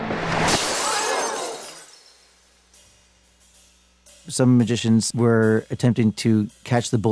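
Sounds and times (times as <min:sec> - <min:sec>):
pane of glass on a stage shattering from a gunshot: 0:00.4 - 0:02.4
cascade of tinkling glass shards: 0:00.6 - 0:02.8
speech: 0:04.3 - 0:07.1.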